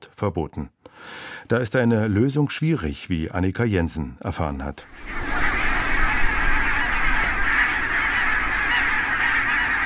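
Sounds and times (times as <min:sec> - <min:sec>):
speech: 0:00.2 - 0:05.4
huge flock of barnacle geese calling: 0:04.9 - 0:09.8.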